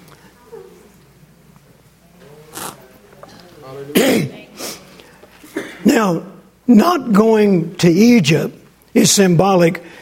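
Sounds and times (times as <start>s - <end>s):
throat clearing from a tickle in the throat: 3.3s - 4.4s, 5.4s - 5.9s
speech: 3.7s - 4.2s, 5.9s - 10.0s
coughing from a tickle in the throat: 3.9s - 4.4s, 5.4s - 6.1s.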